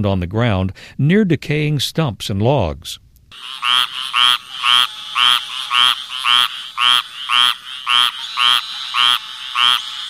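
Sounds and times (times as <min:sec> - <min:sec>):
speech: 0:00.0 - 0:04.9
squirrel tree frog calling in raspy nasal bursts: 0:03.3 - 0:10.0.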